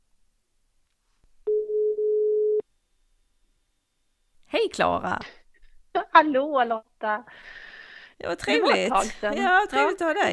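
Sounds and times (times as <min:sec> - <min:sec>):
telephone line ringing tone while a call is placed: 0:01.5 - 0:02.6
speech: 0:04.6 - 0:05.4, 0:06.2 - 0:07.6, 0:08.2 - 0:10.3.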